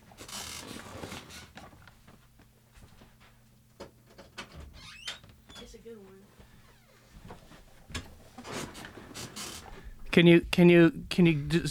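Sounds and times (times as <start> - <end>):
door creaking as it swings open: 0.2 - 1.6, 4.1 - 5.8, 7.9 - 9.9
speech: 10.2 - 11.6.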